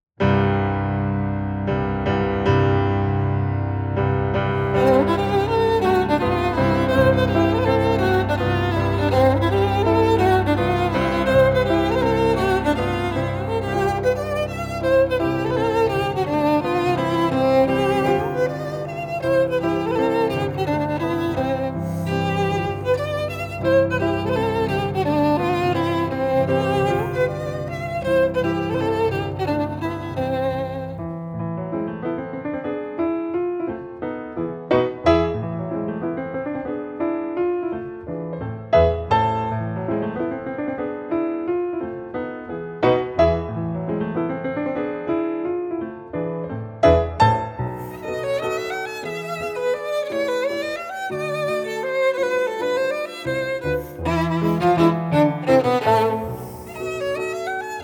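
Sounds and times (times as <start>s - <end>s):
piano: 0.2s - 57.8s
violin: 4.4s - 31.5s, 47.6s - 57.8s.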